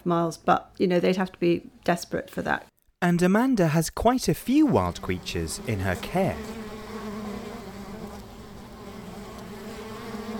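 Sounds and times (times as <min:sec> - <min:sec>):
speech: 0:00.0 - 0:06.6
honeybees buzzing around a hive: 0:04.5 - 0:10.3.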